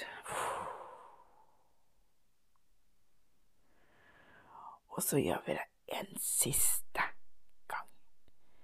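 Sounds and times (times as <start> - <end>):
soft airy breath: 0.0 - 1.7, 3.6 - 4.8
slow exhale: 0.2 - 1.7, 3.7 - 4.7
speech: 5.0 - 6.8.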